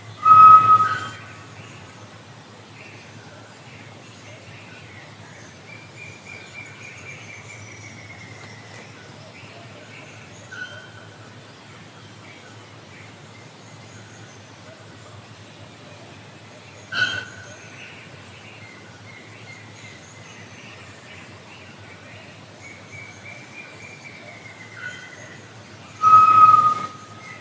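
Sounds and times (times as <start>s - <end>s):
macuco tinamou call: 0.2s - 1.5s, 26.0s - 27.3s.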